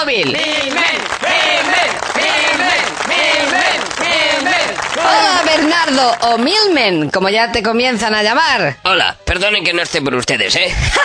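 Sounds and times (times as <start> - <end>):
speech: 0.0 - 1.4, 5.6 - 11.0
studio audience applause: 0.4 - 6.4.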